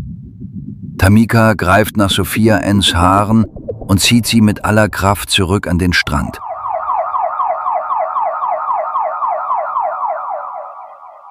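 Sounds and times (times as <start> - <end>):
speech: 0.9 - 6.5
ambulance siren wailing in a fast yelp pattern: 6.4 - 11.2.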